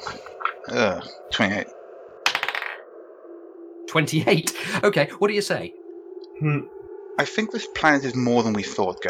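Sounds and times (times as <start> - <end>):
speech: 0.1 - 1.8, 3.9 - 5.8, 6.4 - 9.0
hard twenty-sided die clattering across a tabletop: 2.3 - 2.8.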